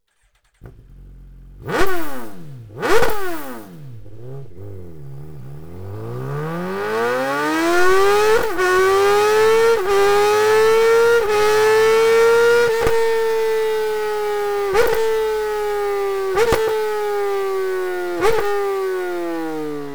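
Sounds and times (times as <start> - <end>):
motorcycle with aftermarket exhaust system: 0.5 - 19.9.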